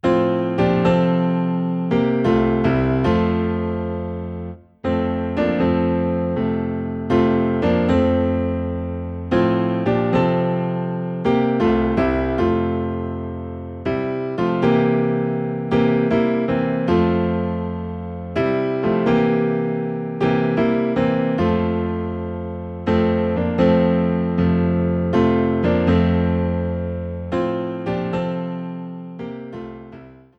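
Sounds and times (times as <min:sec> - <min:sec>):
hymn on low piano in F: 0:00.0 - 0:30.3.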